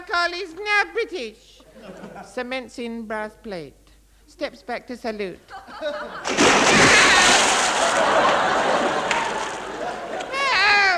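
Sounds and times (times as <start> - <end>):
speech: 0.2 - 9.1
laughter: 1.7 - 2.4, 5.5 - 10.9
loud splash of someone dropping into water: 6.2 - 9.8.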